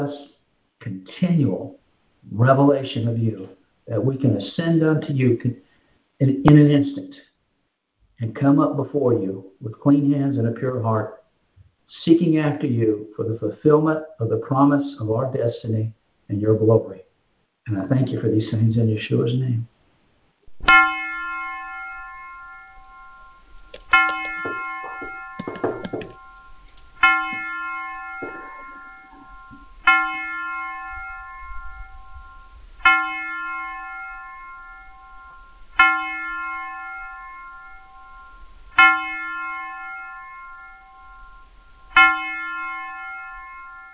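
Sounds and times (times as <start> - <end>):
speech: 0.0 - 7.3, 8.2 - 11.2, 11.9 - 19.7
bell tolling: 20.6 - 43.9.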